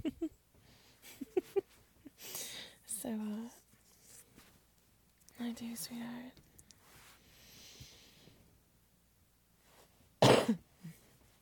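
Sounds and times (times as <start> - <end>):
quiet breathing: 2.1 - 4.5, 5.4 - 8.6
speech: 3.0 - 3.6, 5.5 - 6.4
loud cough with throaty exhale: 10.2 - 10.6.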